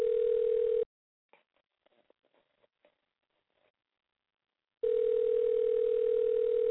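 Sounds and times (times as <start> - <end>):
telephone ringing tone on an outgoing call: 0.0 - 0.9, 4.8 - 6.6.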